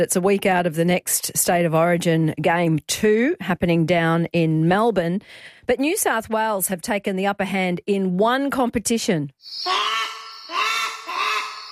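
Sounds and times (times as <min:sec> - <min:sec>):
speech: 0:00.0 - 0:09.9
brush turkey calling with rasping honking notes: 0:09.4 - 0:11.7.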